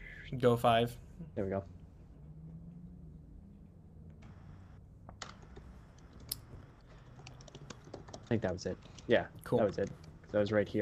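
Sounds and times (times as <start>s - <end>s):
low hum: 0.0s - 10.8s
speech: 0.3s - 1.8s, 8.3s - 10.8s
arrow keys clicked on computer keyboard: 5.2s - 10.5s.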